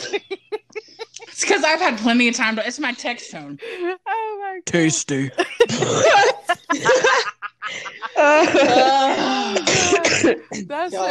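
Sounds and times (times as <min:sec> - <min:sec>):
a couple of people laughing loudly: 0:00.0 - 0:02.0, 0:04.8 - 0:10.2
speech: 0:00.1 - 0:00.4, 0:01.4 - 0:04.0, 0:04.6 - 0:06.9, 0:08.2 - 0:09.3
rough breathy coughing: 0:05.0 - 0:10.8.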